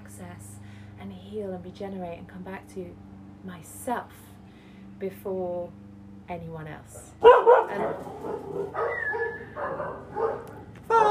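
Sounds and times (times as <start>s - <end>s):
speech: 0.2s - 4.3s, 5.0s - 11.0s
several dogs barking and yipping excitedly: 7.0s - 11.0s.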